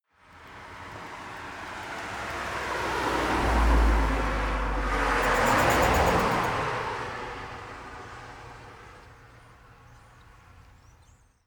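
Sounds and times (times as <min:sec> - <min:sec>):
two cars driving by in opposite directions: 0:00.3 - 0:09.8.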